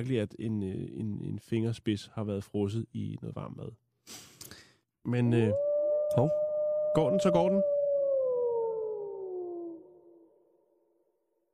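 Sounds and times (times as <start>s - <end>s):
speech: 0.0s - 4.3s, 5.0s - 7.8s
wolf howling: 5.5s - 10.5s.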